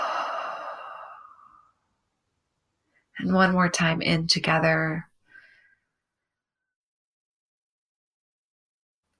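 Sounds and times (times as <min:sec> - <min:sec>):
person exhaling during a breathing exercise: 0:00.0 - 0:01.8
speech: 0:03.2 - 0:05.1.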